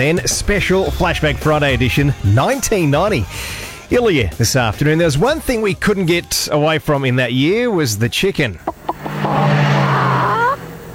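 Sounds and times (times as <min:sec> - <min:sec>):
speech: 0:00.0 - 0:09.6
Toyota Camry twin-cam fuel-injected multi-valve engine revving: 0:08.6 - 0:10.9.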